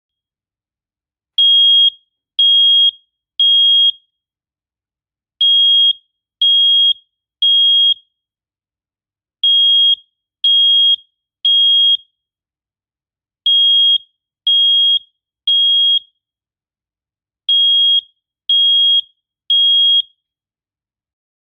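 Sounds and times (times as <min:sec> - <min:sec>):
smoke detector alarm tone: 0:01.4 - 0:04.1, 0:05.4 - 0:08.1, 0:09.4 - 0:12.2, 0:13.5 - 0:16.2, 0:17.5 - 0:20.2.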